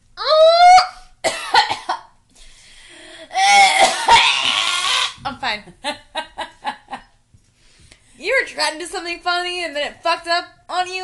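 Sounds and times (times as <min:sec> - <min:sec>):
person in a harsh coughing fit: 0:01.2 - 0:02.1, 0:03.3 - 0:05.2
strained wheezing gasps for air: 0:02.3 - 0:03.7
speech: 0:05.5 - 0:06.0, 0:08.6 - 0:11.0.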